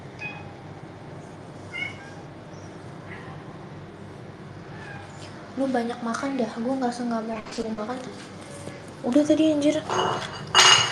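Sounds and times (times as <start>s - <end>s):
cat meowing: 0.2s - 0.6s, 1.7s - 2.3s, 4.7s - 5.2s
speech: 5.6s - 8.3s, 9.0s - 10.6s.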